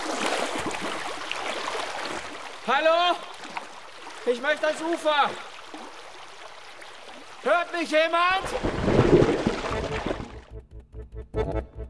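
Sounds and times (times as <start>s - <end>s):
running water gurgling: 0.0s - 10.4s
speech: 2.7s - 3.3s, 4.2s - 5.5s, 7.4s - 9.5s
low bubbling plops: 8.4s - 10.6s.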